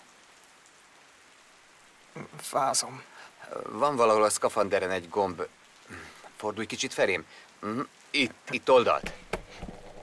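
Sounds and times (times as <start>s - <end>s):
steady rain falling: 0.0s - 10.0s
speech: 2.2s - 9.7s.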